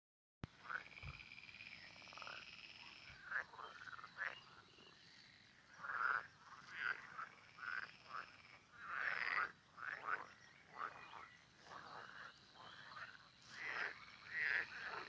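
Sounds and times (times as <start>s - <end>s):
frogs croaking: 0.5s - 15.0s.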